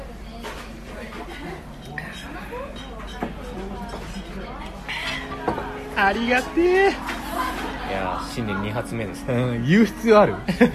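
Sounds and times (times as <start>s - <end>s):
murmur of voices and room noise: 0.0s - 10.7s
glasses clinking in a toast: 1.8s - 9.3s
speech: 6.0s - 7.1s, 7.9s - 10.7s
laughter: 7.0s - 8.7s, 10.2s - 10.7s.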